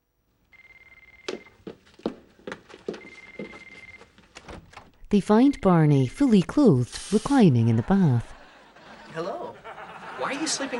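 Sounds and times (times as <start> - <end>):
mobile phone ringing faintly from another room: 0.5 - 1.7, 2.9 - 4.2
speech: 5.1 - 8.3, 10.3 - 10.7
laughter: 7.3 - 10.7.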